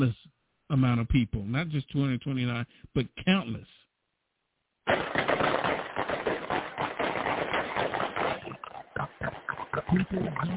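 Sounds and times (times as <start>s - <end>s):
speech: 0.0s - 3.8s, 9.9s - 10.5s
rapid gunfire: 4.9s - 10.5s.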